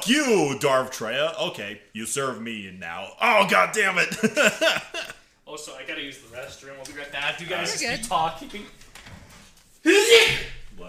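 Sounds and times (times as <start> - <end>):
speech: 0.0 - 8.8, 9.8 - 10.8
laughter: 4.0 - 5.2
person sneezing: 9.9 - 10.6.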